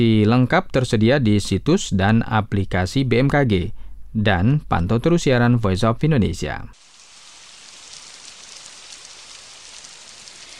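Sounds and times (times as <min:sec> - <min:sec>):
speech: 0:00.0 - 0:06.9
light rain drizzling: 0:06.8 - 0:10.5.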